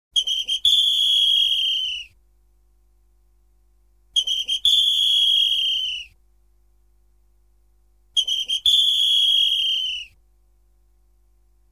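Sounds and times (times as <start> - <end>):
whistle: 0.1 - 2.2, 4.2 - 6.2, 8.2 - 10.2.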